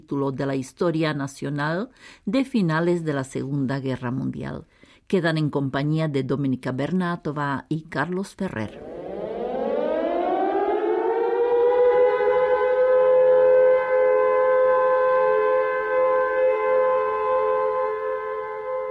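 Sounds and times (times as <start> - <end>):
speech: 0.1 - 9.2
air raid siren wailing in Prague: 8.7 - 18.8.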